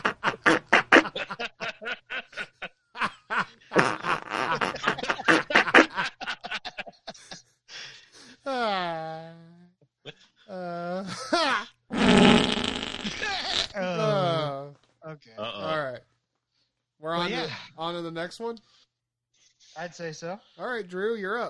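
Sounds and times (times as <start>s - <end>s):
comedic fart sound effects played back: 0.0s - 1.2s, 3.8s - 4.8s, 11.9s - 13.8s
laughter: 0.0s - 8.4s, 10.1s - 11.8s, 13.2s - 14.5s, 17.2s - 17.6s
speech: 18.1s - 18.7s, 19.8s - 21.4s.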